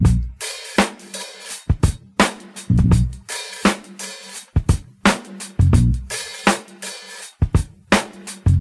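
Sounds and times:
breakbeat drums in A sharp with tuned kick: 0.0 - 8.5.

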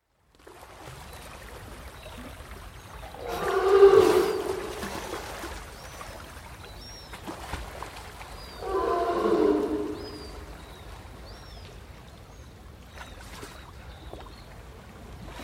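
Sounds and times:
sea lion calling: 3.2 - 5.0, 8.6 - 10.6.

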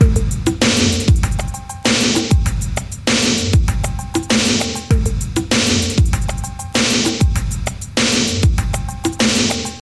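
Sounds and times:
kick drum tuned to A sharp: 0.0 - 1.6, 2.3 - 2.9, 3.5 - 4.2, 4.9 - 6.5, 8.4 - 8.9
98 bpm drum groove in A sharp key: 0.0 - 9.8.

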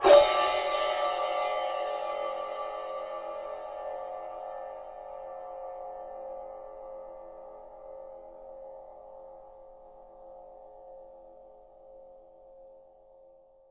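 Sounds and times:
crash cymbal drum sample tuned to the D note: 0.0 - 6.4.

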